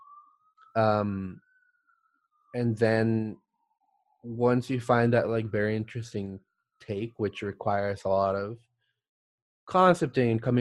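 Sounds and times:
ambulance siren: 0.0s - 1.4s, 2.5s - 3.0s, 4.3s - 8.3s
voice sound: 0.8s - 1.3s, 2.6s - 3.3s, 4.3s - 8.6s, 9.7s - 10.5s
speech: 0.8s - 1.4s, 2.5s - 3.4s, 4.2s - 8.7s, 9.7s - 10.5s.

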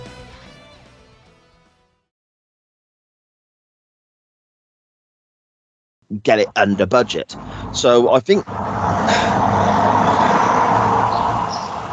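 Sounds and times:
speech: 6.1s - 9.4s
loud car passing by outside: 7.4s - 11.9s.

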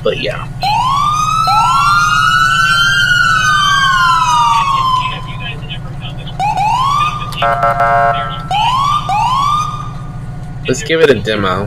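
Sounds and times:
speech: 0.0s - 0.6s, 7.4s - 8.4s, 10.7s - 11.6s
emergency vehicle siren in a video game: 0.0s - 10.8s
steady engine rumble: 0.0s - 11.6s.

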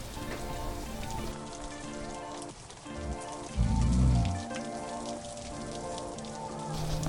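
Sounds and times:
steady rain pattering on a surface: 0.0s - 7.0s
deep rumble: 3.6s - 4.4s.

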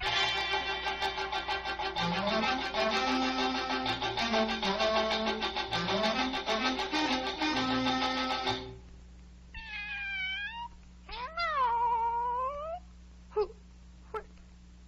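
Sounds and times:
low steady hum: 0.0s - 14.8s
cat in a tree meowing: 9.5s - 12.8s.

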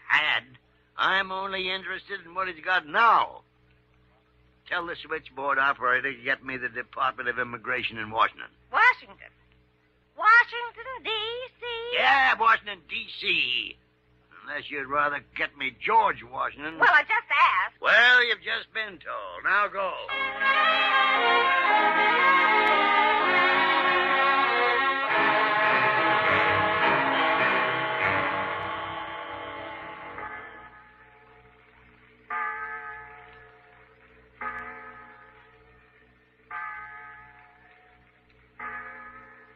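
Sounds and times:
speech: 0.4s - 3.5s, 4.7s - 9.4s, 10.2s - 13.8s, 14.5s - 23.0s
tower clock resonant chime melody: 20.1s - 31.5s, 32.3s - 38.0s.

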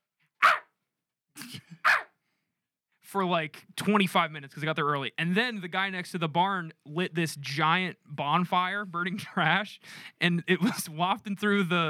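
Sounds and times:
human voice imitating a dog barking: 1.8s - 2.1s
speech: 3.1s - 11.8s.

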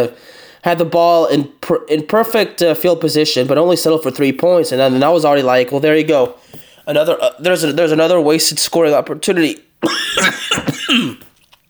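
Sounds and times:
speech: 0.0s - 11.3s
harsh raspy coughs: 9.8s - 11.4s.

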